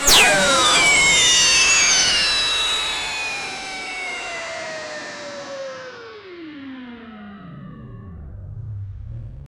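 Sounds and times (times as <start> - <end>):
sharp energy collision: 0.0 - 6.2.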